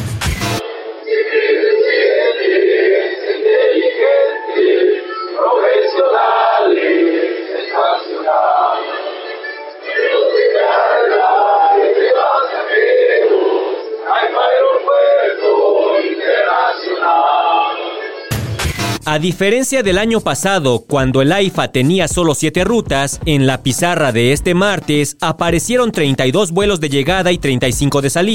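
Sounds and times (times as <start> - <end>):
full-voiced choir singing an anthem through a small speaker: 0.4 - 18.4
speech: 19.1 - 28.3.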